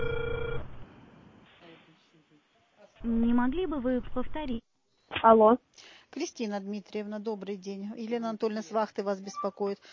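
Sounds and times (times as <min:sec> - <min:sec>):
telephone ringing tone while dialing a call: 0:00.0 - 0:00.7
faint low noise: 0:00.0 - 0:09.9
speech: 0:03.0 - 0:09.9.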